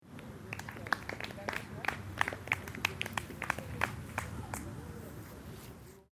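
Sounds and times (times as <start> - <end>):
football crowd clapping: 0.1 - 4.8.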